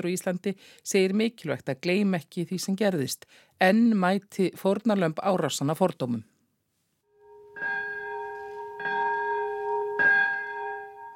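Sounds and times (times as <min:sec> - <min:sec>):
speech: 0:00.0 - 0:06.3
large memorial bells ringing at peace center: 0:07.2 - 0:11.1.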